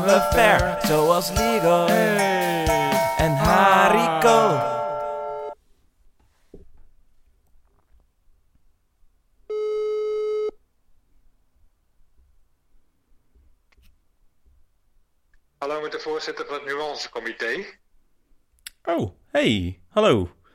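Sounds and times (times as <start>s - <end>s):
speech: 0.0s - 4.8s, 15.9s - 17.8s, 18.8s - 20.4s
telephone ringback tone on an outgoing call: 4.4s - 5.6s, 9.5s - 10.6s.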